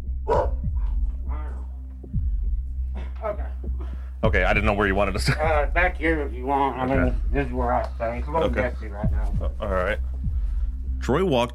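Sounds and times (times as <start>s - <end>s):
steady low rumbling hum: 0.0s - 11.5s
caged bulldog barking: 0.3s - 1.0s
speech: 3.2s - 3.5s, 4.2s - 10.1s, 11.0s - 11.5s.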